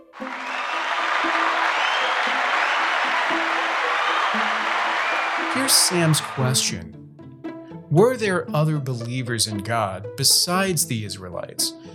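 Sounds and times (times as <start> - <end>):
crowd applauding: 0.0 - 6.7
speech: 5.6 - 7.0, 7.9 - 11.9.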